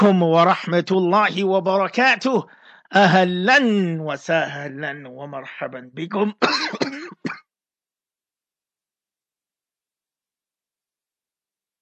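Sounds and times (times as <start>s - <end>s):
speech: 0.0s - 7.4s
raspy cough: 6.4s - 7.5s
throat clearing: 6.4s - 7.5s.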